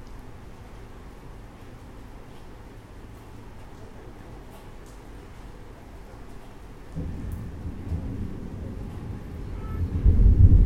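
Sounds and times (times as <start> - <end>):
rain falling: 0.0 - 10.6
deep thunder rumbling: 7.0 - 10.6.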